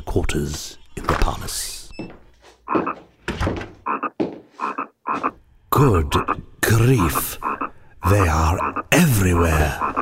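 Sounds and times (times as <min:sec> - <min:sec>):
speech: 0:00.2 - 0:01.8, 0:05.8 - 0:07.4, 0:08.1 - 0:10.0
frogs croaking loudly in a chorus: 0:02.7 - 0:03.0, 0:03.8 - 0:10.0.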